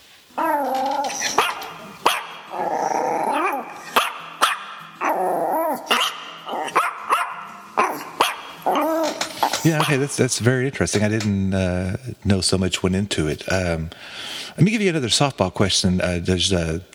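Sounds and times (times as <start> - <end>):
dog barking and growling: 0.3 - 10.2
speech: 9.9 - 16.9.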